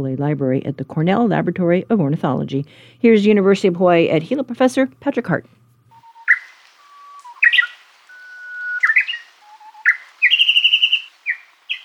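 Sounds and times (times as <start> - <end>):
speech: 0.0 - 5.6
Japanese bush warbler singing: 6.0 - 11.8.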